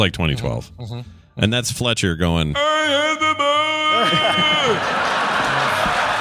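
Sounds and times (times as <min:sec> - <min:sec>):
speech: 0:00.0 - 0:03.2, 0:04.0 - 0:05.2
loud sustained shout with falling voices: 0:03.1 - 0:05.0
crowd cheering in a played recording: 0:03.6 - 0:06.1
laughter: 0:03.8 - 0:06.1.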